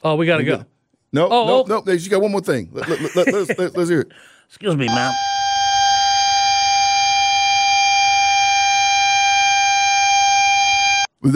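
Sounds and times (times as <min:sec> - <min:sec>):
speech: 0:00.0 - 0:05.4
laughter: 0:02.8 - 0:04.0
siren going off at a pool room in Dawsonville: 0:04.9 - 0:11.2.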